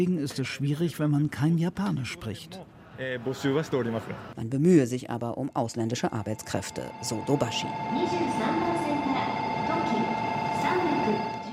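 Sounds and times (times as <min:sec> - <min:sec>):
speech: 0:00.0 - 0:08.9
faint high whine of train: 0:05.9 - 0:11.5
train in Japan rolling along the rails: 0:06.3 - 0:11.5.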